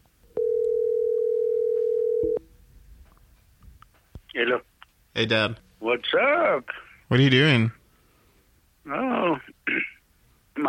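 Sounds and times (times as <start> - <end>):
telephone dial tone while dialing a call: 0.4 - 2.4
speech: 4.4 - 7.8, 8.8 - 9.5.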